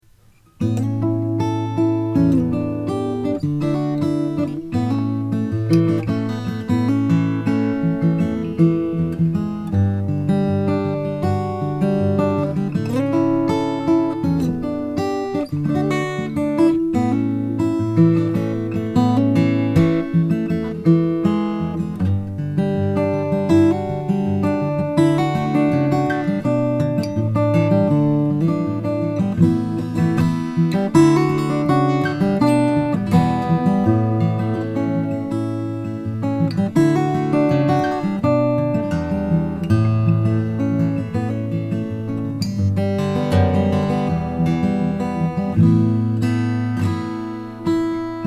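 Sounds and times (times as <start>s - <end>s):
Taylor 812 Indian rosewood acoustic guitar playing: 0.0s - 48.2s.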